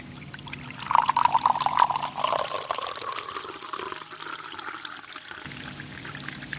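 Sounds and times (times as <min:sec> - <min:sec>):
water pouring from a jug into a glass: 0:00.1 - 0:06.5.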